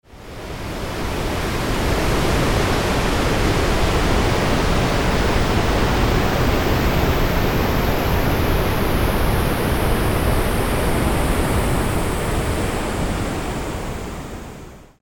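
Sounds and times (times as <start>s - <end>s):
sweeping pink noise: 0.2s - 14.8s
ocean waves: 0.3s - 14.8s.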